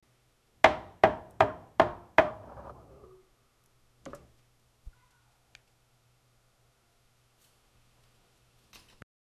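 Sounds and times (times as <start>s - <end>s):
wood carving: 0.6s - 3.2s.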